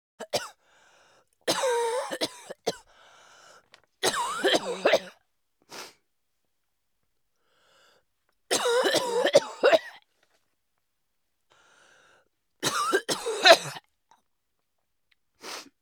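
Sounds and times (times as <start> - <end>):
woman coughing: 1.5 - 2.8, 4.0 - 5.2, 8.5 - 10.0, 12.6 - 13.8.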